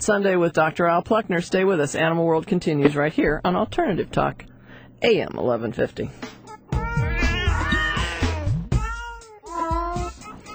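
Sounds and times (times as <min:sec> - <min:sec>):
speech: 0:00.0 - 0:06.4
several unhappy cats meowing and yowling: 0:06.7 - 0:10.1.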